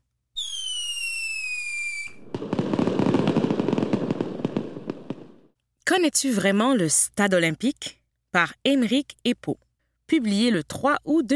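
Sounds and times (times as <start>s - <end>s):
rising whistle from a launching firework: 0.4s - 5.0s
speech: 5.9s - 11.3s.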